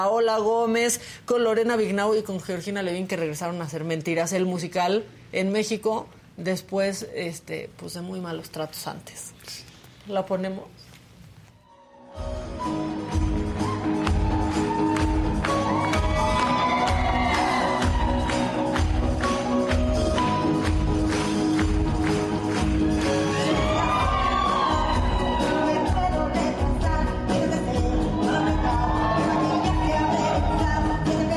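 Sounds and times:
speech: 0:00.0 - 0:10.8
large audience cheering with whoops and shouts: 0:11.6 - 0:20.2, 0:22.0 - 0:26.5, 0:27.7 - 0:31.2
large audience applauding in Mexico: 0:12.6 - 0:26.0, 0:28.1 - 0:30.9.

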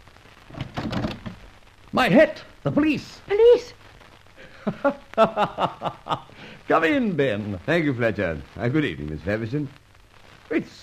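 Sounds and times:
soft rain-like hiss: 0:00.0 - 0:10.8
door opening with rattling and clattering: 0:00.5 - 0:01.4
speech: 0:02.0 - 0:03.8, 0:04.6 - 0:09.8, 0:10.5 - 0:10.8
laughter: 0:04.4 - 0:06.3.

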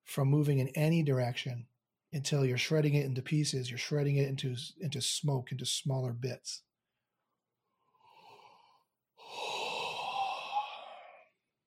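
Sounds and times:
speech: 0:00.2 - 0:06.7
person yawning during a meditation session: 0:09.2 - 0:11.3.

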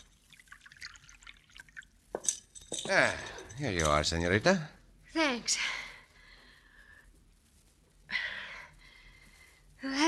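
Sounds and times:
water pouring into a glass: 0:00.0 - 0:02.0
speech: 0:02.9 - 0:05.8.

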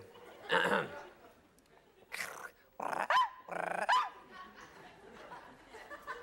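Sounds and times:
laughter: 0:00.0 - 0:02.2, 0:04.2 - 0:06.2
man imitating small dog barking: 0:02.2 - 0:04.2.

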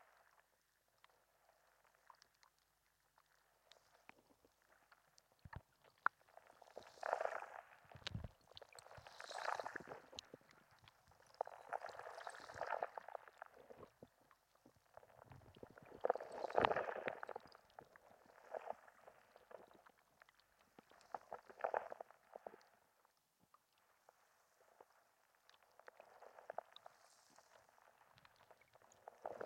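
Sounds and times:
underwater bubbling and crackling water at a fishing harbour: 0:00.0 - 0:29.4.

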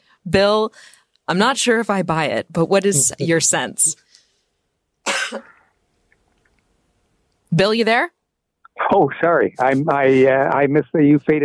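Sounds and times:
speech: 0:00.2 - 0:04.1, 0:05.3 - 0:05.5, 0:07.5 - 0:08.2, 0:08.8 - 0:11.4
single sharp cough with throaty tail: 0:05.1 - 0:05.6.

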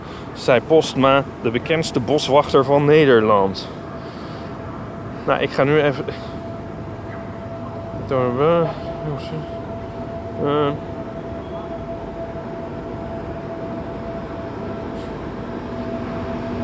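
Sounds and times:
tram rail cleaning vehicle rumbling past: 0:00.0 - 0:16.6
speech: 0:00.4 - 0:03.8, 0:05.3 - 0:06.3, 0:08.1 - 0:09.6, 0:10.4 - 0:10.9
constant humming tone: 0:04.5 - 0:16.6.

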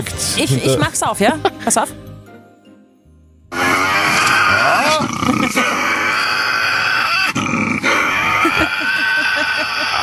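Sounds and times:
speech: 0:00.0 - 0:02.1
Tasmanian devil growling and screeching: 0:03.5 - 0:10.0
laughter: 0:05.0 - 0:06.0, 0:08.2 - 0:10.0.

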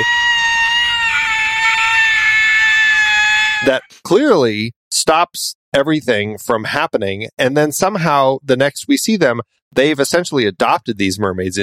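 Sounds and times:
woman's shrill banshee-like shriek: 0:00.0 - 0:03.7
speech: 0:03.6 - 0:11.6.

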